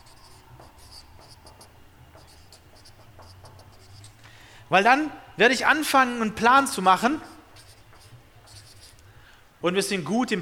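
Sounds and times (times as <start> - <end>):
writing on a board: 0.0 - 4.2, 6.7 - 9.1
speech: 4.7 - 7.3, 9.6 - 10.3.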